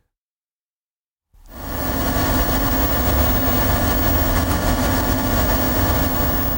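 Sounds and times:
lab cooling units for a quantum computer humming: 1.4s - 6.5s.

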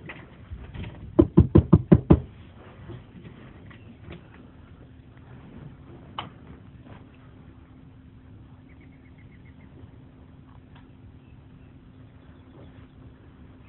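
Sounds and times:
quiet outdoor ambience with faint scattered sounds: 0.0s - 13.6s
firm knocks on a house door: 1.2s - 2.3s.

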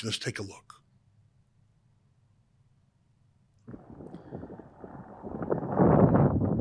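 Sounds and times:
speech: 0.0s - 0.8s
wind buffeting an outdoor microphone: 3.7s - 6.5s.

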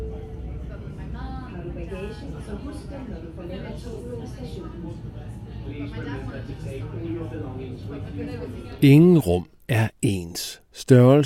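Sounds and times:
steady low rumble of the moving Copenhagen Metro carriage: 0.0s - 8.8s
many overlapping voices chattering in a crowded Copenhagen Metro train at rush hour: 0.0s - 10.2s
speech: 2.1s - 11.2s.

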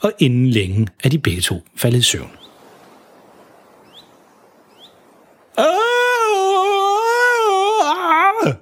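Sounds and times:
speech: 0.0s - 2.5s, 5.6s - 6.0s
man in a boat screaming in pain from a stuck fishing hook: 5.6s - 8.6s.

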